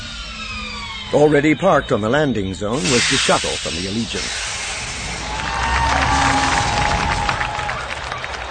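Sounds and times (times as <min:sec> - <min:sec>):
speech: 0:01.1 - 0:04.5
large crowd roaring and cheering: 0:04.7 - 0:08.4
scattered clapping: 0:05.2 - 0:08.4.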